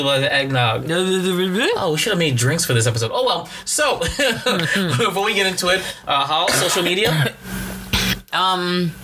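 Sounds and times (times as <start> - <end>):
speech: 0.0 - 7.6, 8.4 - 9.0
laughter: 4.0 - 5.4
woman with bronchitis coughing in a studio: 6.5 - 7.4.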